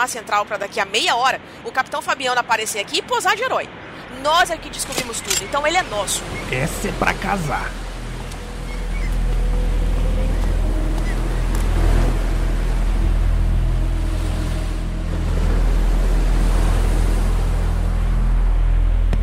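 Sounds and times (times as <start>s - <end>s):
speech: 0.0s - 7.8s
ocean waves crashing against rocks: 4.2s - 18.5s.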